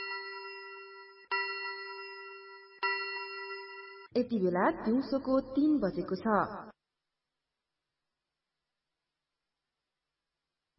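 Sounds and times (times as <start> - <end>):
radio station time-signal chime marking three o'clock in the afternoon: 0.0 - 4.1
speech: 4.1 - 6.7.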